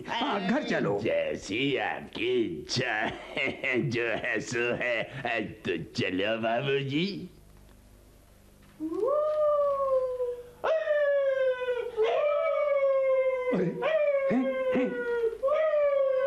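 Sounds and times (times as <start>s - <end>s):
speech: 0.0s - 7.4s
dog howling: 8.8s - 16.2s
dog yelping: 11.9s - 12.8s, 13.8s - 14.8s.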